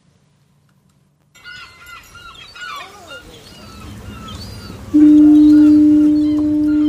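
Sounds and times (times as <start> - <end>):
seabirds chattering with gull-like calls: 1.5 - 6.8
deep loud foghorn blast: 4.9 - 6.8.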